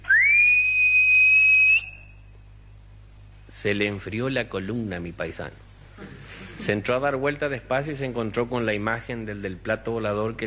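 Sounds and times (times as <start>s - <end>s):
eerie ghostly whistle: 0.0s - 2.2s
speech: 3.6s - 5.7s, 6.6s - 10.4s.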